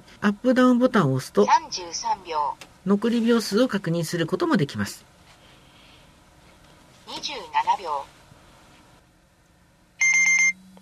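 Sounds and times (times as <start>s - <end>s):
speech: 0.2s - 5.1s, 7.2s - 8.2s
kitchen timer alarm beeping: 10.0s - 10.6s.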